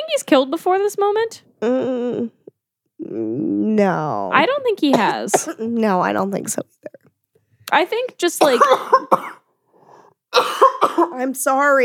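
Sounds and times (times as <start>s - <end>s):
speech: 0.1s - 2.4s, 3.0s - 7.1s, 7.7s - 9.4s, 10.3s - 11.8s
person coughing: 4.9s - 5.7s, 8.4s - 9.4s, 10.4s - 11.2s.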